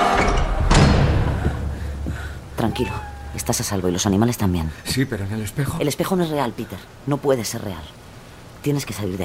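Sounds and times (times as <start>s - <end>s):
wooden door slamming shut: 0.1s - 1.8s
speech: 2.8s - 8.0s, 8.6s - 9.2s.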